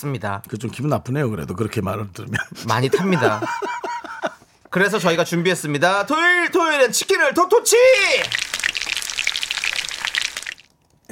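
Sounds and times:
speech: 0.0 - 3.9, 4.7 - 8.6
laughter: 2.3 - 4.4
chicken frying in hot oil: 7.9 - 11.1.

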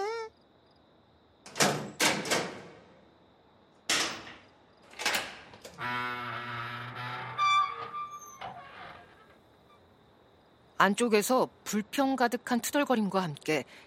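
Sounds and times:
wooden door creaking open as an iron bolt is drawn back: 1.5 - 2.8, 3.9 - 9.8
speech: 10.8 - 13.8.

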